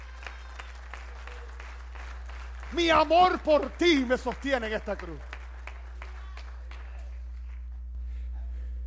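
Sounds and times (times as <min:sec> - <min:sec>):
audience applauding: 0:00.0 - 0:07.8
speech: 0:02.7 - 0:05.3.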